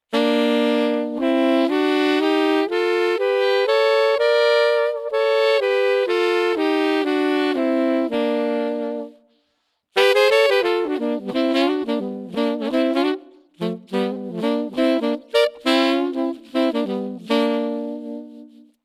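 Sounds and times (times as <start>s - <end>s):
saxophone playing a B-flat major scale through a pitch shifter set to a major third: 0.0s - 18.8s.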